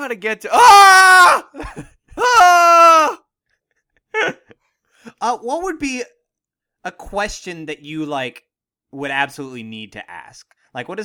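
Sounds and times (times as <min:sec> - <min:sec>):
speech: 0:00.1 - 0:02.7, 0:05.2 - 0:06.2, 0:06.8 - 0:11.0
person screaming high-pitched while running away: 0:00.5 - 0:01.6, 0:02.2 - 0:03.2.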